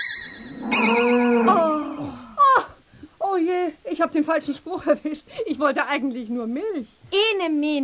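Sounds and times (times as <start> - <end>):
cow mooing: 0.4 - 2.0
speech: 4.1 - 7.8.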